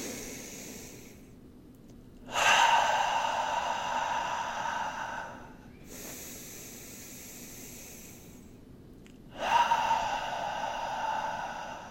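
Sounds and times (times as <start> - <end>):
deep breaths inhaled through the nose during a guided breathing exercise: 0.0 - 1.3, 2.3 - 8.6, 9.3 - 11.9.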